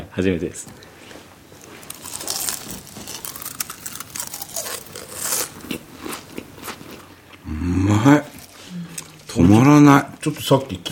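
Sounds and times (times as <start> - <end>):
speech: 0.2 - 0.9, 7.7 - 8.3, 9.8 - 10.9
biting crispy fried koshiabura tempura: 0.6 - 7.4.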